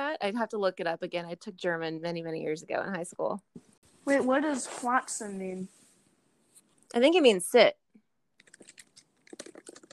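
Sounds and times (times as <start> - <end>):
speech: 0.2 - 5.8, 6.9 - 7.8
fingers typing on a computer keyboard: 8.4 - 9.9.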